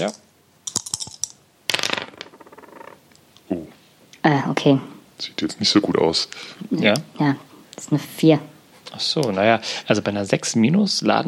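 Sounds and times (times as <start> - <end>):
speech: 0.0 - 0.2, 3.5 - 11.2
dice rolling across a hard table surface during a game: 0.7 - 3.0.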